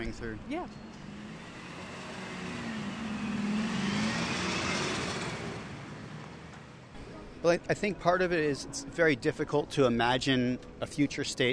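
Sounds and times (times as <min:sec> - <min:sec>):
speech: 0:00.0 - 0:01.0, 0:07.4 - 0:11.5
car driving past on a street: 0:00.8 - 0:07.0.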